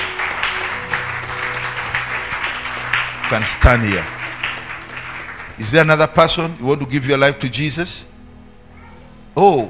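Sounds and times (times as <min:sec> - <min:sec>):
crowd clapping at a church service: 0:00.0 - 0:06.5
speech: 0:03.3 - 0:04.2, 0:05.6 - 0:08.1, 0:09.4 - 0:09.6.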